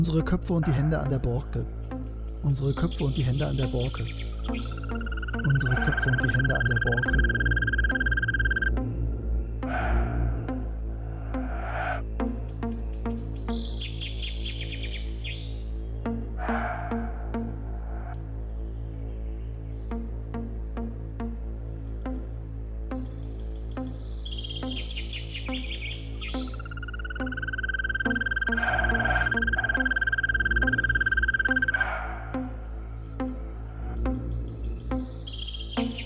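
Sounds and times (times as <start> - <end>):
speech: 0.0 - 1.8, 2.4 - 7.5
steady droning musical background: 0.0 - 36.0
birds chirping and whistling in a forest: 2.2 - 8.7, 12.0 - 17.2, 23.2 - 32.5, 34.2 - 36.0.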